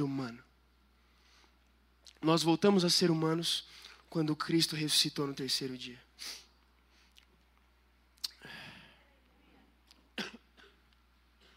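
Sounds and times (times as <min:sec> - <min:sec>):
speech: 0:00.0 - 0:00.5, 0:02.2 - 0:06.4
low steady hum: 0:00.0 - 0:11.5
short harsh coughs: 0:10.2 - 0:10.8.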